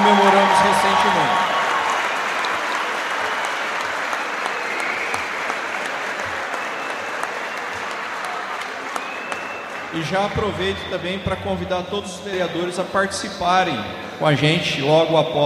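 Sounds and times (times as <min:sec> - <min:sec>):
applause from a room full of people for teachers: 0:00.0 - 0:11.4
speech: 0:10.0 - 0:15.4.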